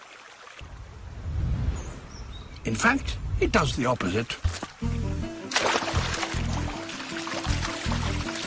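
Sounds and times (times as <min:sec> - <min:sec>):
speech: 0:02.6 - 0:05.0
basilisk lizard feet skittering across the water surface: 0:04.5 - 0:08.4.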